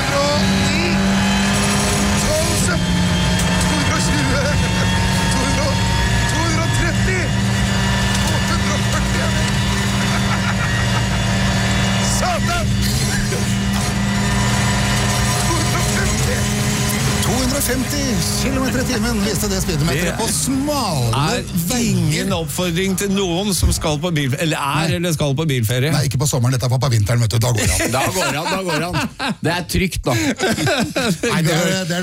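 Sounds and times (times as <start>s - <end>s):
WRC rally car engine roaring at high speed on Golsfjellet in winter: 0.0s - 25.0s
laughter: 3.8s - 5.6s, 8.2s - 12.0s, 17.3s - 20.7s, 27.5s - 32.0s
speech: 19.0s - 32.0s.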